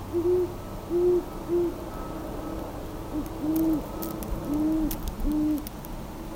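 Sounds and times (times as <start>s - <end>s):
Great horned owl giving deep muffled hoots: 0.1s - 2.2s, 3.1s - 5.7s.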